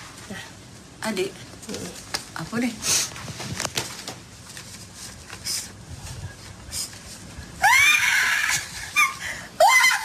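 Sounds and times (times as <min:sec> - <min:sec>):
speech: 0:01.0 - 0:03.1
mother screaming in excitement on getting a surprise gift: 0:07.6 - 0:10.0.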